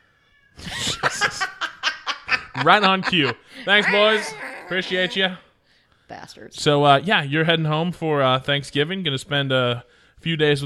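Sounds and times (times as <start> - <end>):
laughter: 0.7 - 5.4
speech: 2.6 - 5.5, 6.1 - 10.6
cat meowing insistently: 3.7 - 5.4.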